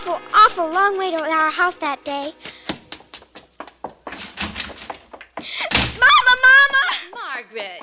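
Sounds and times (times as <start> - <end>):
speech: 0.1 - 2.6
hurried footsteps of a girl running into her house: 0.8 - 7.8
door slamming shut: 4.1 - 6.2
girl calling out to her mother in a raised voice: 6.0 - 7.4.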